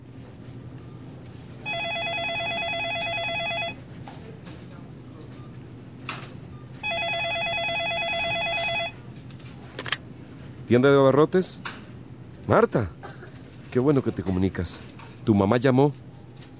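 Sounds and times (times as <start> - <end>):
telephone ringing with electronic trill: 1.6 - 3.8, 6.8 - 9.0
low murmur: 3.8 - 6.2
speech: 10.7 - 11.8, 12.5 - 13.0, 13.7 - 16.0.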